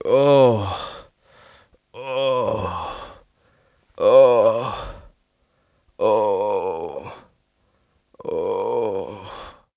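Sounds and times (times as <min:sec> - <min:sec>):
adult man moaning long: 0:00.0 - 0:01.1, 0:02.0 - 0:03.2, 0:04.0 - 0:05.1, 0:06.0 - 0:07.3, 0:08.2 - 0:09.7.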